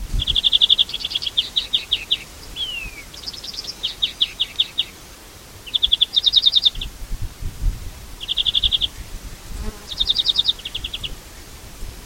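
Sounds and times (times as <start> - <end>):
European greenfinch Chloris chloris ringing trills: 0.2 - 5.0, 5.6 - 6.9, 8.2 - 9.1, 9.9 - 11.1.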